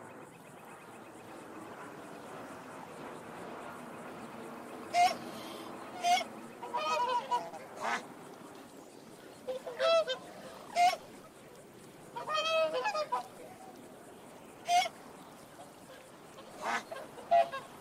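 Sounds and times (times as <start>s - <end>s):
quiet hiss: 0.0s - 17.8s
swan honking: 4.9s - 8.0s, 9.5s - 11.0s, 12.2s - 13.3s, 14.6s - 14.9s, 16.4s - 17.8s.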